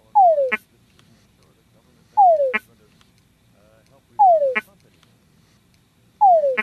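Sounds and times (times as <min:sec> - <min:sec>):
tundra frog mating call croaking: 0:00.0 - 0:00.7, 0:02.2 - 0:02.7, 0:04.2 - 0:04.8, 0:06.2 - 0:06.6.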